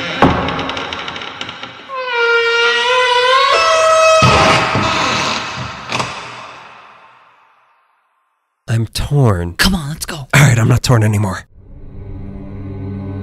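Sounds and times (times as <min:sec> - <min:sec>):
mortuary door hinges creaking open: 0:00.0 - 0:06.6
speech: 0:08.8 - 0:11.5.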